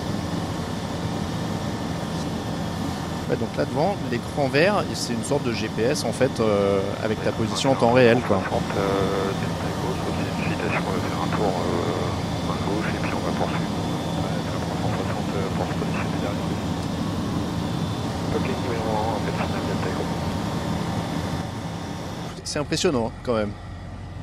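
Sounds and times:
small training airplane engine drone in the cockpit: 0:00.0 - 0:24.2
speech: 0:03.3 - 0:09.6, 0:22.5 - 0:23.6.

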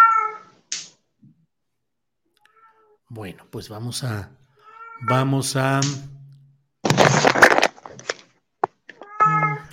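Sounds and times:
cat meowing: 0:00.0 - 0:00.6, 0:04.6 - 0:05.2, 0:09.0 - 0:09.7
speech: 0:03.1 - 0:04.4, 0:05.0 - 0:06.2
harsh crackly noise: 0:06.8 - 0:09.1.

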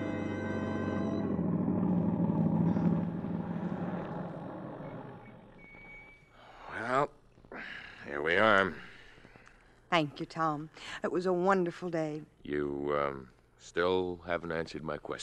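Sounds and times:
car engine rumbling as the vehicle slows to a stop: 0:00.0 - 0:05.9
speech: 0:10.0 - 0:15.2.

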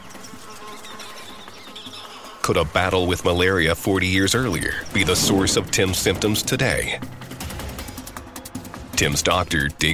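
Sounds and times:
mosquitoes buzzing in a jungle in Vietnam: 0:00.0 - 0:05.5
speech: 0:02.4 - 0:07.2, 0:09.0 - 0:09.9.

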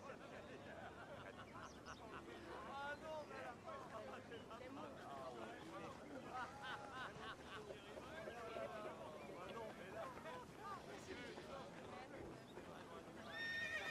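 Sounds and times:
laughter: 0:00.0 - 0:03.0, 0:03.9 - 0:13.0
murmur of overlapping voices in a medieval town: 0:00.0 - 0:13.8
horse whinny: 0:13.3 - 0:13.8.

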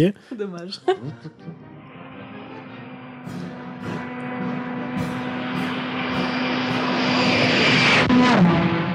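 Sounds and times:
speech: 0:00.0 - 0:01.7
laughter: 0:00.2 - 0:01.6
brass band playing: 0:01.1 - 0:06.2
propeller-driven aerotrain roaring past: 0:01.3 - 0:08.9.

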